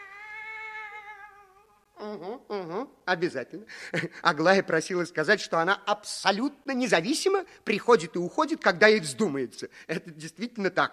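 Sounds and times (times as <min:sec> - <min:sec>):
long drawn-out cat meow: 0:00.0 - 0:01.7
speech: 0:02.0 - 0:10.9.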